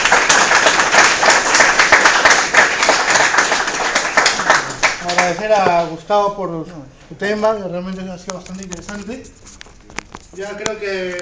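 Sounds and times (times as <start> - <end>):
audience applause after a conference talk: 0.0 - 5.4
speech: 5.3 - 9.6, 10.3 - 11.2.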